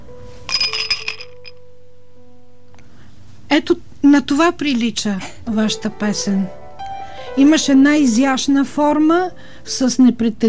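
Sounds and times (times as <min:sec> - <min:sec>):
ice cubes clinking against a glass: 0:00.5 - 0:01.6
speech: 0:03.5 - 0:06.6, 0:07.4 - 0:10.4.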